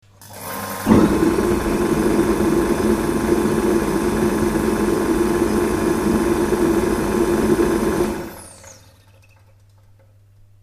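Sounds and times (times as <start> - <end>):
jet: 0.9 - 8.8.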